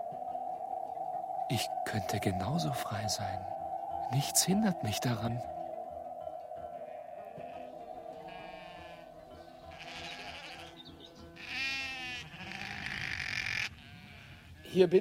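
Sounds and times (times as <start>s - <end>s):
steady low humming background: 0.0s - 11.4s
speech: 1.5s - 5.5s, 14.8s - 14.9s
sheep bleating: 7.2s - 14.7s.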